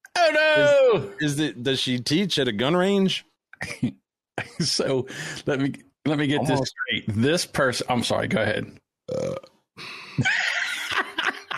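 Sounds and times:
speech: 0:00.3 - 0:10.4
loud long croaky burp: 0:09.1 - 0:09.6
laughter: 0:10.2 - 0:11.5.

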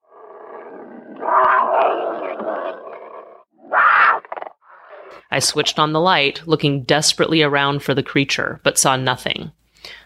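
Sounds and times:
big cat growling low and rough: 0:00.0 - 0:05.3
speech: 0:05.4 - 0:10.0.

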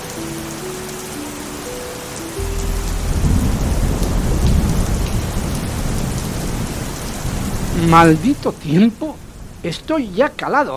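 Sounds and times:
heavy rain pouring across the street: 0:00.0 - 0:10.7
deep low rumble: 0:02.4 - 0:06.7
speech: 0:07.8 - 0:10.7.

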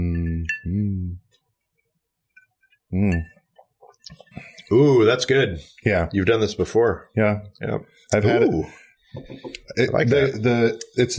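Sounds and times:
glasses clinking in a toast: 0:00.0 - 0:00.9, 0:03.0 - 0:04.5
speech: 0:02.9 - 0:03.3, 0:04.1 - 0:11.1.

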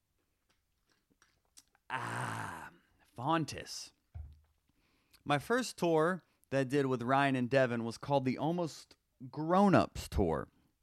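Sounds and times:
person drinking with lip and swallowing clicks: 0:01.6 - 0:02.9
speech: 0:01.9 - 0:02.3, 0:03.2 - 0:04.0, 0:05.3 - 0:10.5.

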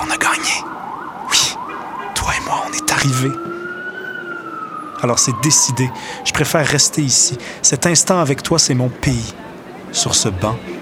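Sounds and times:
ambulance siren wailing: 0:00.0 - 0:09.7
sharp bursts of street noise: 0:00.0 - 0:10.8
speech: 0:03.0 - 0:03.6, 0:05.0 - 0:10.8
faint crowd sounds: 0:06.3 - 0:10.8.

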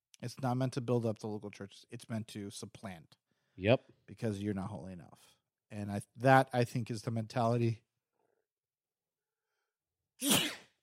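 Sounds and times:
speech: 0:00.2 - 0:07.9, 0:10.2 - 0:10.5
single loud sneeze: 0:10.2 - 0:10.8.

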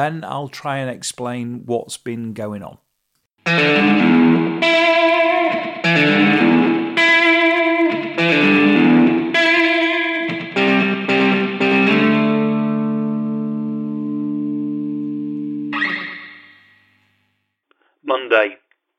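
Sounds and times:
speech: 0:00.0 - 0:02.8
loud twangy electric guitar riff with strummed chords and heavy effected tone: 0:03.4 - 0:16.9.

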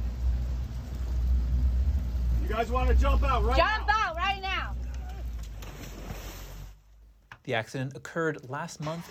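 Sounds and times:
boat motor rumbling on Traverse Bay Michigan: 0:00.0 - 0:07.2
speech: 0:02.5 - 0:04.0, 0:07.4 - 0:09.1.

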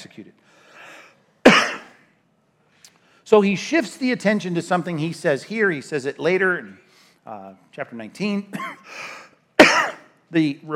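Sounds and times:
speech: 0:00.0 - 0:00.7, 0:03.3 - 0:09.2, 0:10.3 - 0:10.7
man coughing: 0:01.4 - 0:02.0, 0:08.5 - 0:08.9, 0:09.6 - 0:10.1
man clearing his throat: 0:01.5 - 0:02.0, 0:08.5 - 0:08.8, 0:09.6 - 0:10.1.

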